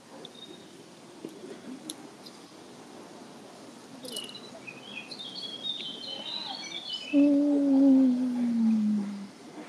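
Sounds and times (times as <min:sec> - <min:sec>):
bird chirps outdoors: 0:04.0 - 0:09.3.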